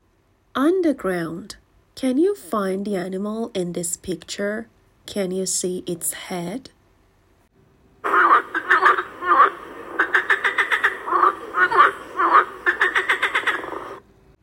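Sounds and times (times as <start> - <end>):
speech: 0.6 - 6.8
frog croaking: 8.0 - 14.0.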